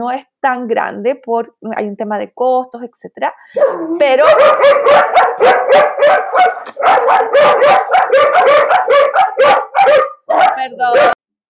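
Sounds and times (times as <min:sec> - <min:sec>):
speech: 0:00.0 - 0:11.2
female dog barking and yipping in a garden: 0:03.5 - 0:11.2.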